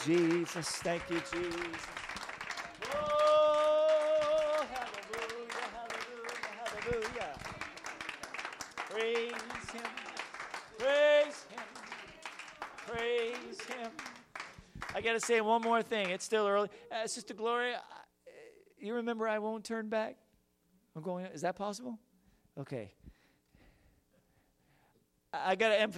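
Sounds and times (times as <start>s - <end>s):
speech: 0.0s - 2.0s, 2.9s - 3.2s, 15.0s - 17.9s, 18.8s - 20.2s, 21.0s - 23.1s, 25.4s - 25.9s
audience clapping hands in applause: 0.0s - 16.3s.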